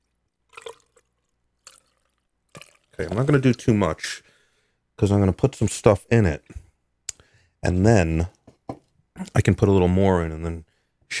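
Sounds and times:
beer pouring into a glass over ice: 0:00.5 - 0:04.0
speech: 0:03.0 - 0:04.3, 0:05.0 - 0:06.6, 0:07.6 - 0:08.4, 0:09.3 - 0:11.1.

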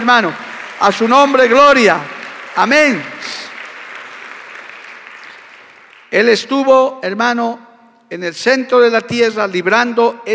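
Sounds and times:
speech: 0:00.0 - 0:03.4, 0:06.1 - 0:10.3
church audience applauding during a sermon: 0:00.0 - 0:06.6.

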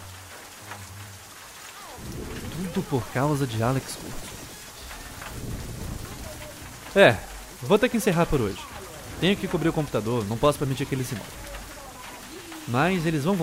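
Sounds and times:
rain pattering and dripping indoors: 0:00.0 - 0:13.4
low rumble: 0:02.0 - 0:11.8
speech: 0:02.8 - 0:04.3, 0:06.9 - 0:11.4, 0:12.7 - 0:13.4.

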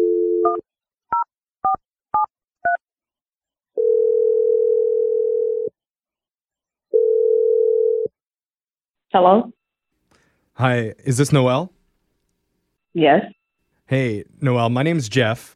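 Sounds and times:
telephone dial tone: 0:00.0 - 0:00.6, 0:03.8 - 0:05.8, 0:06.9 - 0:08.2
speech: 0:09.2 - 0:09.6, 0:10.6 - 0:11.8, 0:13.0 - 0:15.5.

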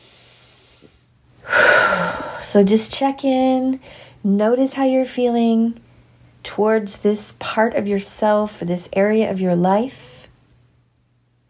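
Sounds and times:
deep breathy inhale: 0:00.0 - 0:02.6
speech: 0:02.5 - 0:05.8, 0:06.5 - 0:10.1.

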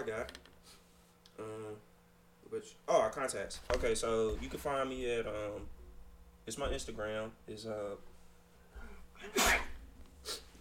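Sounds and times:
speech: 0:00.0 - 0:00.8, 0:02.5 - 0:05.8, 0:06.4 - 0:08.1, 0:09.2 - 0:10.4
person sneezing after a brief inhale: 0:09.2 - 0:10.6.

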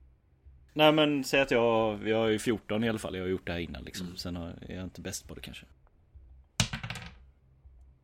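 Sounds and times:
speech: 0:00.8 - 0:05.8
dice rolling on a table: 0:06.6 - 0:07.3.

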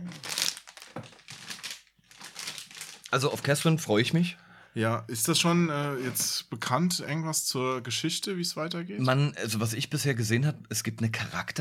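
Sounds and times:
bag crinkling and rustling: 0:00.0 - 0:03.7
speech: 0:03.1 - 0:11.5.

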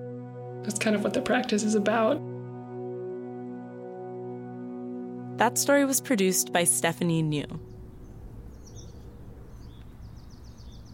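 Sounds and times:
speech: 0:00.6 - 0:02.3, 0:05.4 - 0:07.7
steady low rumble of outdoor ambience: 0:07.4 - 0:10.9
birds squawking and chirping in tree branches: 0:07.6 - 0:10.9.

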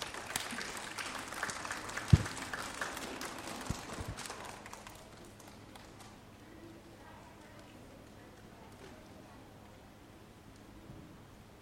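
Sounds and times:
audience applauding students at a chapel gathering: 0:00.0 - 0:06.2.

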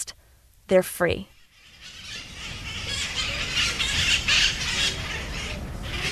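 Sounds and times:
speech: 0:00.7 - 0:01.3
flock of wild parrots squawking on Telegraph Hill: 0:01.3 - 0:06.0.

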